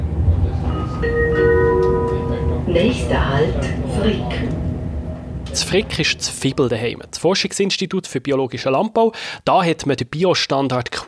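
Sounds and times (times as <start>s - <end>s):
train rolling along rails with low rumble: 0.0s - 7.3s
high sustained metallic whine of train: 0.3s - 7.5s
speech: 2.8s - 4.6s, 5.5s - 11.0s.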